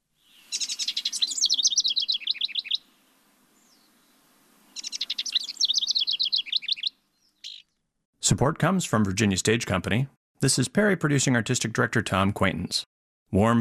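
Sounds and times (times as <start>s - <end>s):
songbird of a species saved by conservationists singing trilled whistled phrases: 0.2s - 2.8s, 4.8s - 7.6s
speech: 8.3s - 13.5s.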